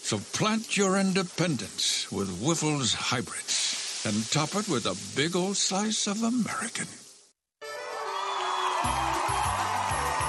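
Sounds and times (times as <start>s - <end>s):
speech: 0.1s - 7.0s
loud dense crowd roaring and cheering: 7.6s - 10.2s
whoops from a crowd: 7.9s - 10.2s.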